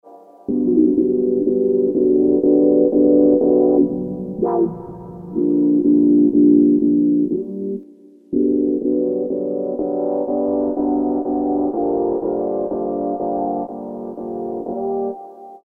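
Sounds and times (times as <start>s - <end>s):
synth E minor chords: 0.0s - 15.6s.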